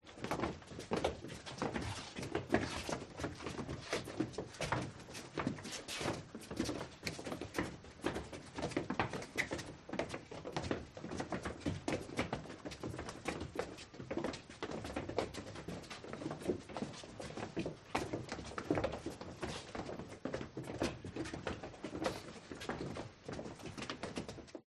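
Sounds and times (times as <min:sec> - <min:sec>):
disordered quiet crowd footsteps: 0:00.0 - 0:24.6.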